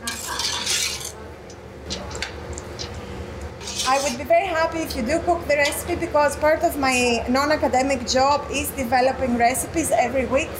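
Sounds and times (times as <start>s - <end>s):
spoon scraping and clinking a pot while stirring onions in olive oil: 0.0s - 1.2s, 3.6s - 4.3s
speech: 3.9s - 10.5s.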